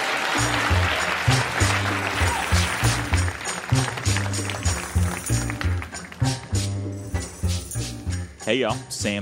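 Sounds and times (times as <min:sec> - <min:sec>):
crowd applauding loudly: 0:00.0 - 0:06.4
rhythmic bass-heavy music beat: 0:00.4 - 0:09.2
speech: 0:08.5 - 0:09.2.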